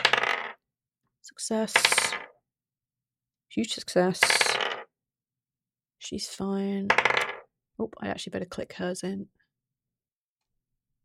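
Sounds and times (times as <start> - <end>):
dice rolling on a hard surface: 0.0 - 0.6, 1.6 - 2.3, 4.1 - 4.9, 6.9 - 7.5
speech: 1.3 - 2.2, 3.6 - 4.5, 6.0 - 7.1, 7.8 - 9.4.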